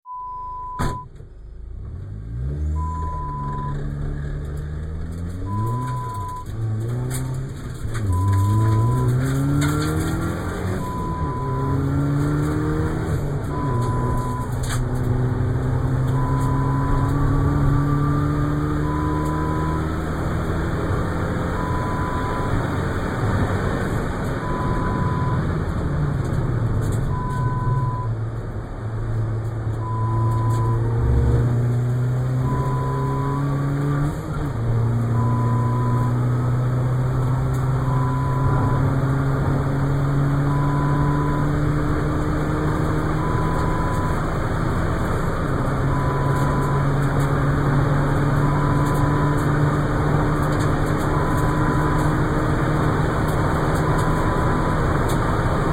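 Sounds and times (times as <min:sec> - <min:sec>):
car interior noise: 0:00.1 - 0:55.7.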